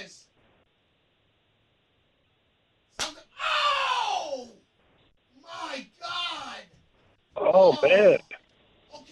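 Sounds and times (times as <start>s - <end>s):
hand slapping a man's bare buttocks: 2.9s - 3.2s
speech: 7.7s - 8.3s.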